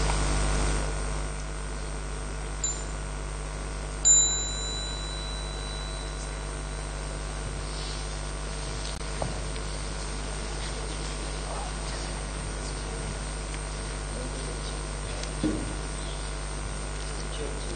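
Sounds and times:
steady low room hum: 0.0 - 17.7
small meditation bell struck with a bright high tone: 2.6 - 3.2, 4.0 - 7.4.

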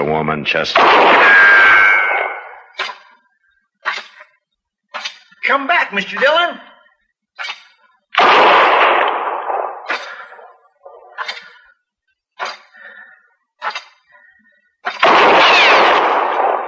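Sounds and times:
speech: 0.0 - 1.8, 5.5 - 6.7
gunshots in a Western-style showdown: 0.6 - 3.1, 8.1 - 11.6, 14.9 - 16.6.

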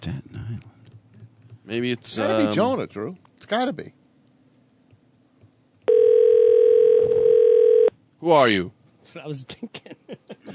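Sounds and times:
speech: 1.7 - 4.0, 8.2 - 10.5
telephone dialing and ringing tone on a call being placed: 5.9 - 7.9.

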